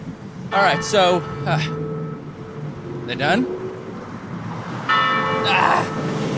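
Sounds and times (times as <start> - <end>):
speech: 0.5 - 1.8, 3.1 - 3.5, 5.5 - 6.0
church bell ringing: 0.5 - 2.3, 4.9 - 6.2.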